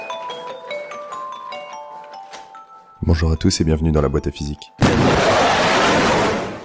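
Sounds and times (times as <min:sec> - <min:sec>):
speech: 0:03.1 - 0:05.1
sonic boom from a jet breaking the sound barrier: 0:04.8 - 0:06.6.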